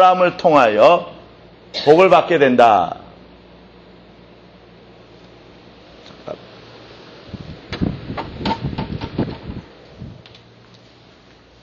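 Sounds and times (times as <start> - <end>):
speech: 0.0 - 1.1, 1.7 - 3.0
low hum: 0.0 - 11.6
person coughing: 1.7 - 2.0.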